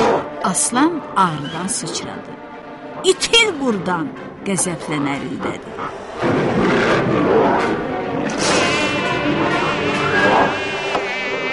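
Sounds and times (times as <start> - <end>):
speech: 0.4 - 7.9
fly buzzing: 8.4 - 11.5.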